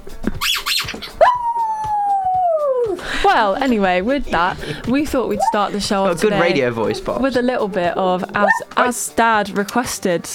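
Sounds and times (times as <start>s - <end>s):
dog howling: 1.2s - 3.0s, 5.3s - 7.2s, 8.4s - 9.0s
speech: 3.3s - 10.3s.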